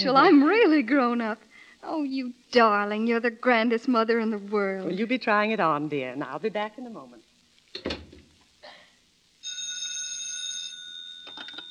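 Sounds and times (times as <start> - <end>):
speech: 0.0 - 8.0
telephone ringing with an electronic trill: 9.4 - 11.6.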